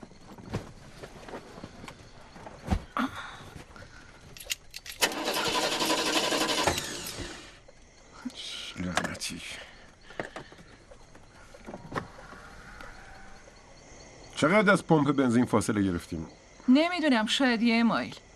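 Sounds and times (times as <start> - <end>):
stranded car's engine cranking: 4.4 - 7.6
speech: 14.4 - 18.2.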